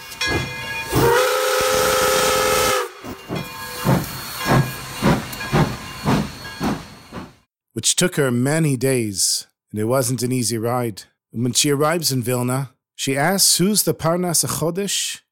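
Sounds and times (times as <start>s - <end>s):
steam train whistle: 0.0s - 5.2s
steam train engine chuffing: 0.2s - 7.4s
speech: 7.8s - 15.2s.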